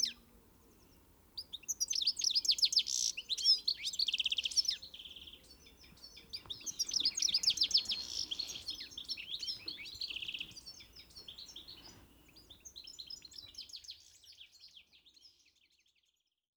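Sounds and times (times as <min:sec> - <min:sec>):
European goldfinch Carduelis carduelis twittering: 0:01.7 - 0:11.8.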